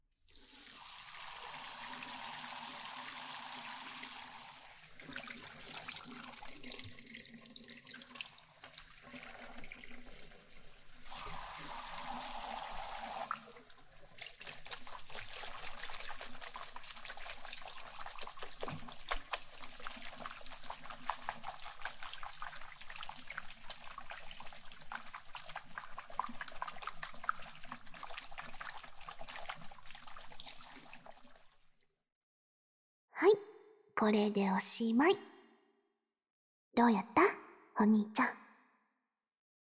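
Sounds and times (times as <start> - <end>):
warm water pouring from a tap or shower over hair: 0.3 - 31.6
speech: 34.0 - 35.3, 36.8 - 37.2, 37.8 - 38.4.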